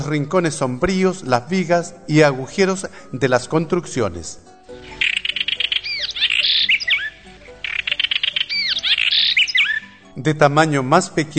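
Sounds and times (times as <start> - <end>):
speech: 0.0 - 4.9, 10.2 - 11.3
house wren calling with chattering trills and whistled notes: 4.8 - 10.2.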